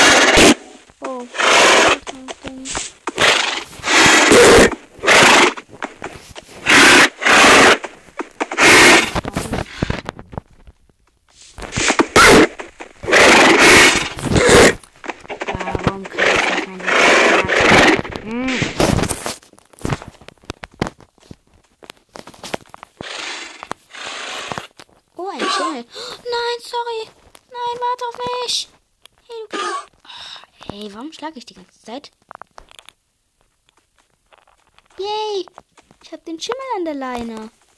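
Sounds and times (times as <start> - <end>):
video game horses neighing and whinnying: 0.0 - 2.2, 3.0 - 5.9, 6.6 - 9.2, 11.8 - 18.8, 23.0 - 24.7, 25.4 - 25.8, 29.5 - 30.0
speech: 36.9 - 37.6.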